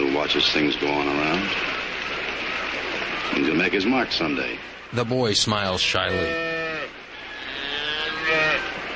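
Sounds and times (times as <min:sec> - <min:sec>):
speech: 0:00.2 - 0:02.2, 0:03.3 - 0:06.5
Jersey cow mooing: 0:06.1 - 0:08.7.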